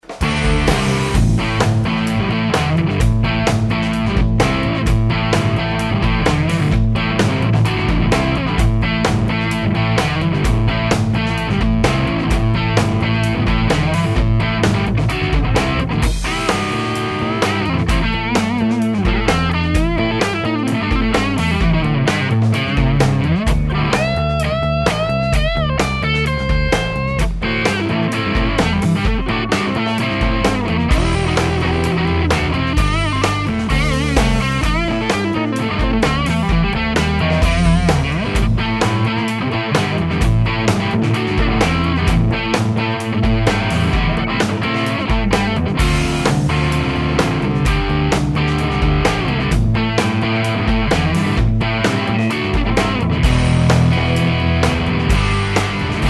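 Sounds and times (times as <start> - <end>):
high-gain electric guitar on neck pickup: 0.0 - 56.0.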